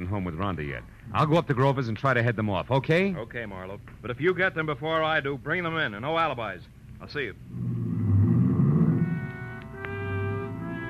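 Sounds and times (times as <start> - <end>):
speech: 0.0 - 7.8
car engine rumbling as the car pulls away quickly: 7.5 - 10.8.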